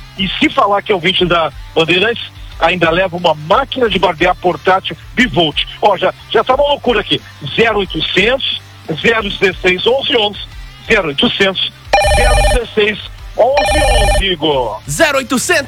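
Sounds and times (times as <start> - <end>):
person talking rapidly close to the microphone: 0.2 - 15.6
speech: 0.2 - 15.6
telephone ringing: 11.9 - 14.4.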